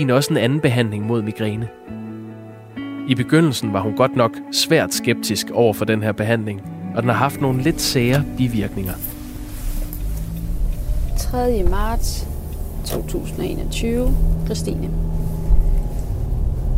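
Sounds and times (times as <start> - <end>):
speech: 0.0 - 2.0, 3.1 - 9.1, 11.2 - 15.3
road noise in the cabin of a moving car: 7.1 - 16.7
steady low engine rumble of a moving car: 7.3 - 16.7.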